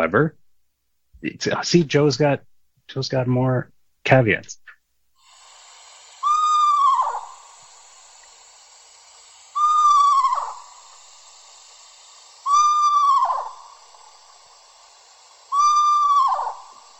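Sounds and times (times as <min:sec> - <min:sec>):
speech: 0:00.0 - 0:00.4, 0:01.2 - 0:04.7
Eastern screech owl tremolo calls: 0:06.1 - 0:08.3, 0:09.4 - 0:16.9
Eastern screech owl giving whinnying calls: 0:06.2 - 0:07.5, 0:09.6 - 0:11.0, 0:12.4 - 0:14.0, 0:15.5 - 0:16.9.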